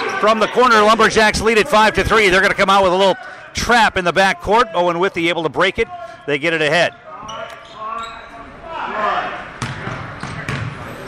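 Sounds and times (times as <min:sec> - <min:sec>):
speech: 0:00.2 - 0:07.4
basketball dribbled on the court during a college game: 0:09.6 - 0:10.8.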